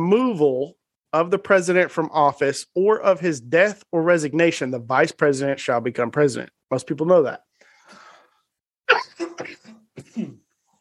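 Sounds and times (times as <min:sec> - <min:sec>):
speech: 0:00.0 - 0:08.0, 0:08.9 - 0:09.6
gruff throat clearing: 0:08.9 - 0:10.6
person coughing while recovering from a month-long illness: 0:08.9 - 0:10.6.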